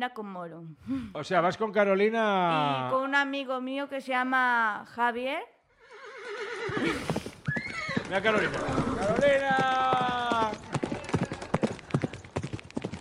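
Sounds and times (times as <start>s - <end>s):
speech: 0.0s - 5.6s, 6.7s - 7.3s, 8.1s - 10.0s
horse whinnying: 5.8s - 9.4s
horse hooves clopping on a hard surface: 6.6s - 12.9s.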